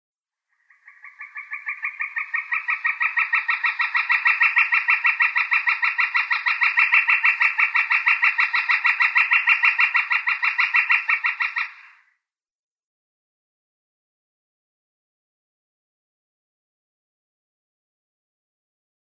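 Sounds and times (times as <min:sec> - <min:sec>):
Northern Flicker display: 0:00.4 - 0:12.2.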